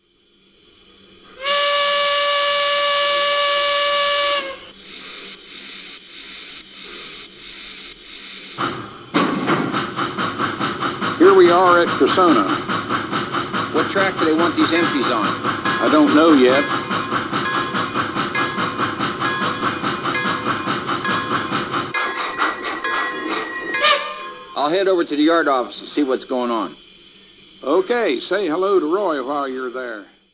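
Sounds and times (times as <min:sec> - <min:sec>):
T1 trains: 0:00.0 - 0:05.5, 0:08.0 - 0:30.3.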